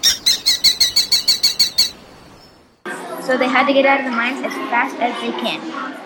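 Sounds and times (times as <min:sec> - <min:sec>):
bird singing bright high chirps: 0:00.0 - 0:02.7
speech: 0:03.3 - 0:06.0.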